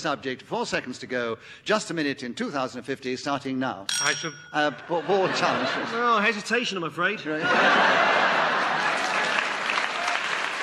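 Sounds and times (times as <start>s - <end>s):
speech: 0.0s - 8.6s
laughter: 4.8s - 6.5s, 7.2s - 9.7s
audience clapping: 8.4s - 10.6s.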